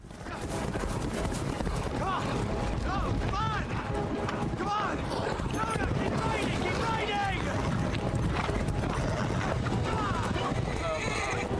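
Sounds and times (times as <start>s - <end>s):
several horses galloping: 0.0s - 11.5s
high horse whinnies: 5.1s - 11.5s.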